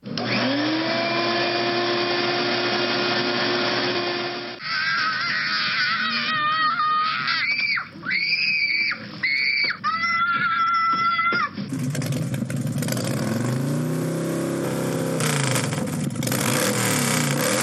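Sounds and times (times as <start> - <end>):
shop vacuum running: 0.0 - 4.6, 11.6 - 17.6
child screaming: 4.6 - 11.6.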